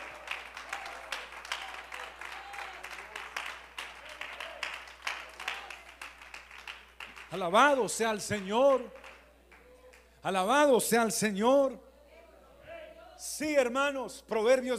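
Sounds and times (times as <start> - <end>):
audience applauding: 0.0 - 9.6
speech: 7.3 - 9.0, 10.2 - 11.9, 13.3 - 14.7.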